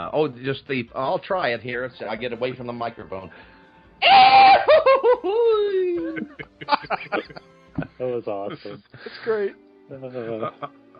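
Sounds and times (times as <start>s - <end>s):
speech: 0.0s - 4.4s, 5.2s - 10.8s
man vocally imitating a famous film scream: 4.0s - 6.4s
laughter: 4.6s - 8.9s, 10.2s - 10.8s.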